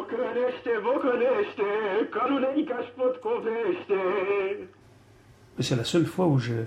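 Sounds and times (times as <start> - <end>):
man singing in Romanian on an old recording: 0.0 - 4.7
speech: 0.2 - 4.8, 5.6 - 6.6
faint hiss: 3.7 - 6.6.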